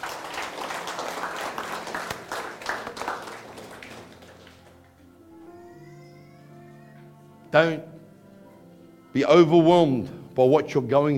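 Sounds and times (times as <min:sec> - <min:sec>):
church audience clapping for the Lord: 0:00.0 - 0:05.0
speech: 0:07.5 - 0:07.9, 0:09.2 - 0:11.1.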